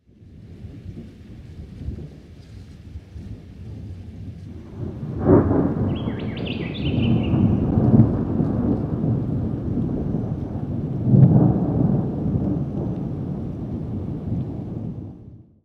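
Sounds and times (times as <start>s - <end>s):
stormy night: 0.1s - 15.6s
rufous whistler calling: 5.8s - 7.7s.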